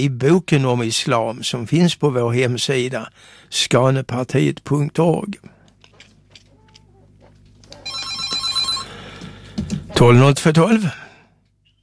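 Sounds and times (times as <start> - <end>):
speech: 0.0 - 5.6, 10.0 - 11.0
telephone bell ringing with a bright metallic trill: 7.8 - 9.0.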